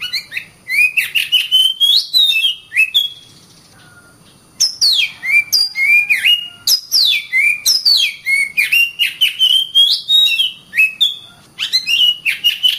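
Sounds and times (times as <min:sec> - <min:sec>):
oriental magpie-robin giving whistled and chirping phrases: 0:00.0 - 0:04.0, 0:04.6 - 0:12.7.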